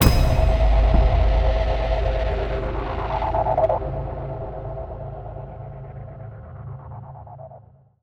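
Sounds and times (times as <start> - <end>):
cinematic metal impacts: 0.0 - 4.7.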